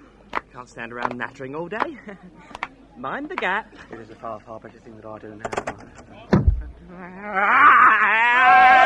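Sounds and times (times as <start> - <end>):
speech: 0.6 - 5.7, 6.9 - 8.7
sharp knock: 5.5 - 6.7.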